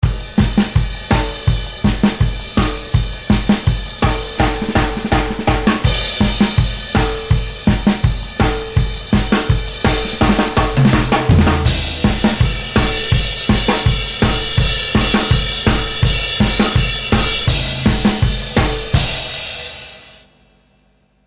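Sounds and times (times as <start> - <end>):
drums: 0.0 - 21.0.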